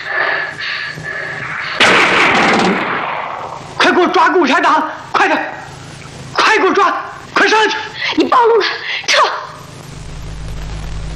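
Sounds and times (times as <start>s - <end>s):
single loud gunshot: 1.8s - 3.6s
speech: 4.2s - 5.6s, 6.6s - 9.3s.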